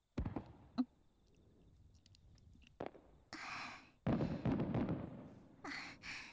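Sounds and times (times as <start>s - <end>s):
fireworks bursting: 0.0s - 0.8s, 2.8s - 3.4s, 4.0s - 5.6s.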